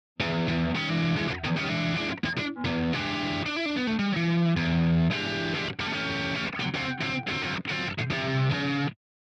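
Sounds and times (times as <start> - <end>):
guitar through a saturator: 0.2 - 9.0.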